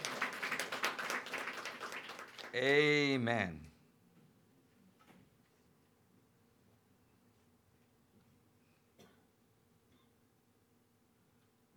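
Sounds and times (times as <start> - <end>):
audience applause: 0.0 - 3.2
speech: 2.5 - 3.7.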